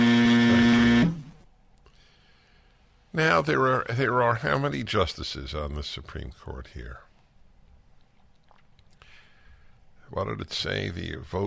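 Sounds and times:
loud harsh buzzer sound effect: 0.0s - 1.4s
speech: 3.2s - 7.1s, 10.1s - 11.4s.

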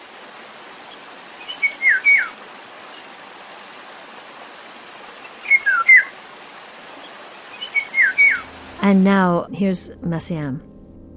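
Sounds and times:
Eurasian golden oriole whistling song: 1.5s - 2.3s, 5.4s - 6.1s, 7.6s - 8.5s
speech: 8.8s - 10.7s.

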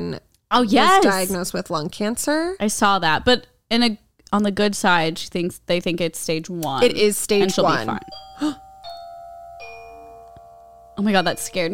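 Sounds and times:
speech: 0.1s - 8.6s, 11.0s - 11.7s
two-tone electronic doorbell chime: 7.4s - 11.7s.

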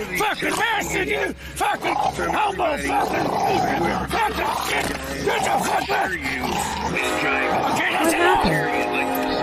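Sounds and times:
dog barking and snarling during a scuffle with a man: 0.2s - 8.6s
speech: 0.3s - 9.1s.

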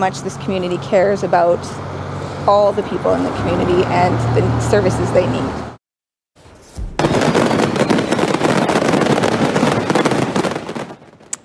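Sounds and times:
speech: 0.0s - 5.8s
fireworks crackling and popping in a factory fire: 6.8s - 11.4s.

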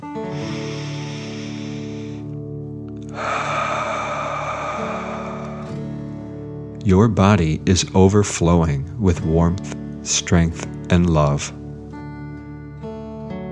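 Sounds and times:
long deep breath in through nose: 0.0s - 2.4s, 3.0s - 6.8s
soft steady musical drone: 0.0s - 8.0s
speech: 6.8s - 11.6s.

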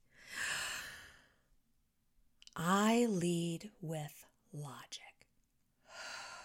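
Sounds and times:
deep breath in through the nose and out: 0.0s - 1.5s, 5.8s - 6.4s
speech: 2.6s - 5.2s.

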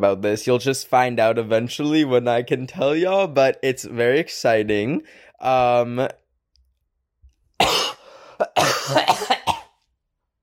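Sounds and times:
speech: 0.0s - 6.2s
harsh breathy coughs: 7.6s - 9.8s
short voiced throat sound: 7.6s - 9.8s.

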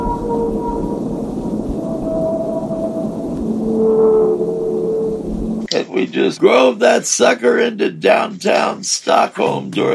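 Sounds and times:
deep rumbling underwater wash: 0.0s - 5.7s
whale songs: 0.0s - 6.3s
speech: 6.0s - 9.9s.

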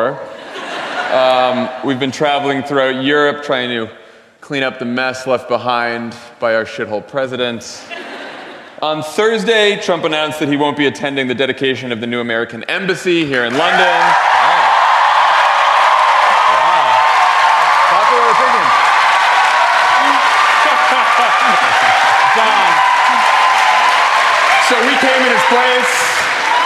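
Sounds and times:
laughter: 0.2s - 2.0s, 7.8s - 9.1s, 19.6s - 23.6s
speech: 1.1s - 8.0s, 8.8s - 14.4s
large live-show audience applauding in London: 13.3s - 26.6s
crowd whooping: 13.5s - 26.6s.

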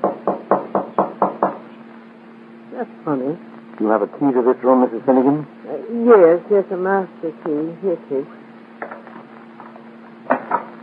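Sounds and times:
knocking on a wooden door: 0.0s - 1.7s
speech: 2.8s - 8.4s.

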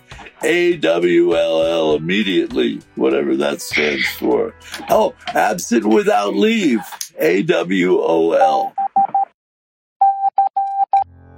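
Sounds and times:
speech: 0.4s - 8.8s
mid-pitched electronic Morse code beeps: 8.7s - 9.3s, 10.0s - 11.1s.

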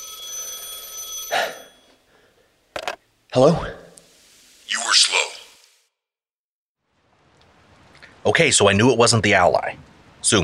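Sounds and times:
telephone ringing with a shrill electronic tone: 0.0s - 2.1s
speech: 3.4s - 3.8s, 8.4s - 10.4s.

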